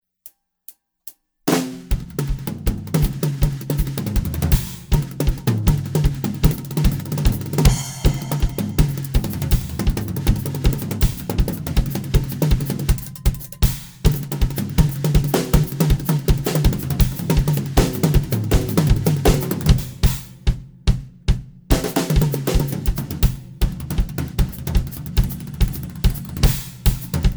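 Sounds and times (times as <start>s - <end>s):
tribal drums: 1.5s - 27.3s.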